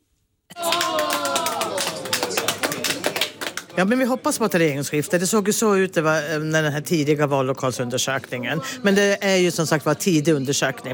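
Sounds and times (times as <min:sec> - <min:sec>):
crowd cheering and whooping at election night party: 0:00.5 - 0:02.8
crowd applause at election night party: 0:00.5 - 0:04.2
speech: 0:03.8 - 0:10.9.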